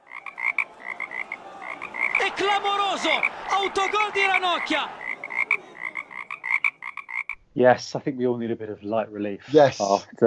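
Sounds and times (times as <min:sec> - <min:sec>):
frog croaking in short nasal pulses: 0:00.0 - 0:02.2, 0:05.0 - 0:07.4
laughter: 0:00.0 - 0:06.5
speech: 0:02.4 - 0:05.0, 0:07.6 - 0:10.2.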